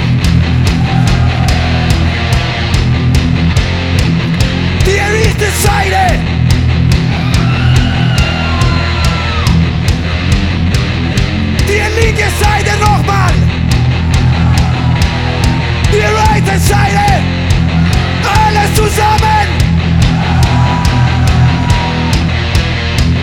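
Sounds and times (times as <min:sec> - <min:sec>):
steady pounding beat: 0:00.0 - 0:23.2
concert crowd screaming: 0:00.4 - 0:03.4, 0:07.0 - 0:10.0, 0:12.1 - 0:23.1
man calling out: 0:04.8 - 0:06.2, 0:11.6 - 0:13.5, 0:15.9 - 0:17.3, 0:18.2 - 0:19.6.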